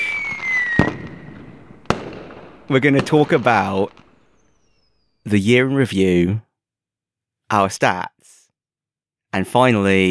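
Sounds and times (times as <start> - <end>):
celebratory firework whistle: 0.0 - 5.2
speech: 2.7 - 4.0, 5.2 - 6.5, 7.5 - 8.2, 9.3 - 10.1.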